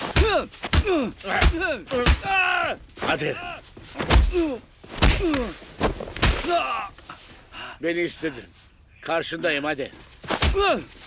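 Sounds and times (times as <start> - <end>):
punches landing in a fistfight: 0.0 - 2.6, 4.0 - 6.9
speech: 0.4 - 5.7, 6.5 - 7.0, 7.8 - 11.0.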